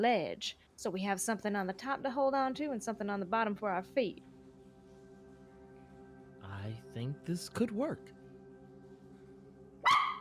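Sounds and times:
speech: 0.0s - 4.3s, 6.5s - 8.2s
hum: 0.6s - 10.1s
dog barking: 9.8s - 10.1s.

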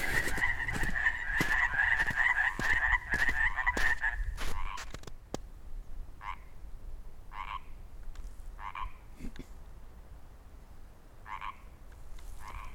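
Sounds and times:
chorus of frogs croaking in a place with snow on the ground: 0.0s - 4.8s, 6.2s - 6.6s, 7.3s - 7.8s, 8.6s - 9.1s, 11.2s - 11.8s, 12.4s - 12.7s.

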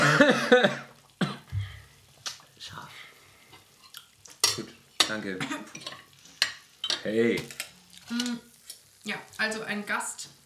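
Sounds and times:
person coughing: 0.0s - 1.6s
speech: 0.2s - 0.9s, 5.1s - 5.9s, 7.0s - 10.3s.

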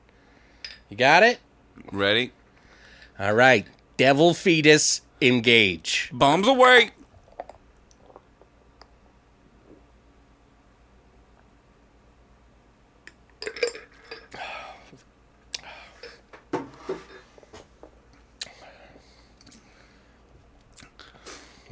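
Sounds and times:
speech: 0.9s - 2.4s, 3.2s - 7.0s
gulping and swallowing as beer is chugged: 7.0s - 8.6s
shot glass dropped into beer with clink and splash: 13.4s - 14.3s.

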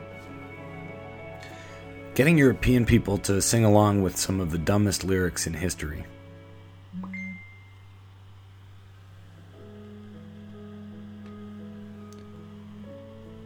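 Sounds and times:
soft sustained tones: 0.0s - 13.4s
steady low hum: 1.3s - 13.4s
speech: 2.2s - 6.2s
phone message notification chime: 7.0s - 7.6s.

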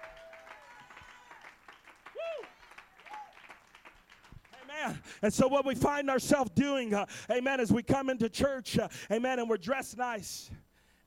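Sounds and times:
church audience clapping: 0.0s - 5.0s
speech: 4.8s - 10.6s.

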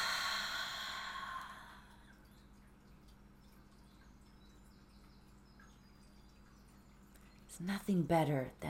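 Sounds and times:
slow deep breath in and out: 0.0s - 2.0s
speech: 7.6s - 8.6s.

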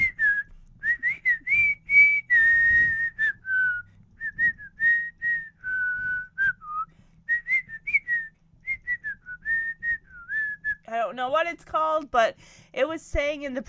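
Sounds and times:
several people whistling a melodic tune: 0.0s - 10.7s
speech: 11.2s - 13.6s.

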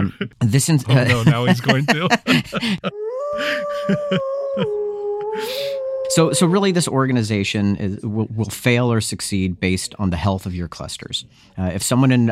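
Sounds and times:
laughter: 0.0s - 0.3s, 0.9s - 4.8s
speech: 0.0s - 4.8s, 5.4s - 12.3s
wolf-like howl: 2.9s - 6.9s.

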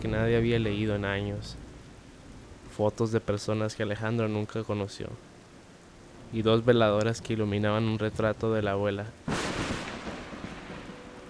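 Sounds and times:
speech: 0.0s - 1.7s, 2.8s - 5.3s, 6.3s - 9.6s
thunder crack and rumble during a lightning storm: 0.0s - 3.8s, 6.1s - 11.2s
steady hiss of storm noise: 0.0s - 11.2s.

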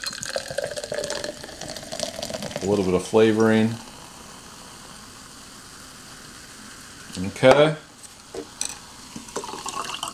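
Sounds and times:
sparkling water pouring into a glass: 0.0s - 7.1s, 8.4s - 10.1s
speech: 2.6s - 3.8s, 7.4s - 7.8s.

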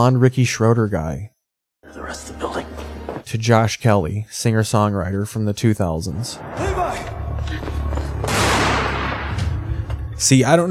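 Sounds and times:
speech: 0.0s - 1.3s, 2.0s - 2.6s, 3.3s - 7.7s, 10.2s - 10.6s
steady low rumble: 6.2s - 10.2s
gunshot: 8.2s - 9.8s.

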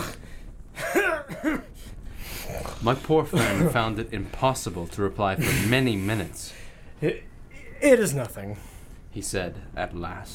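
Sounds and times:
harsh throaty coughs: 0.8s - 1.7s, 3.3s - 3.8s
speech: 2.8s - 10.3s.

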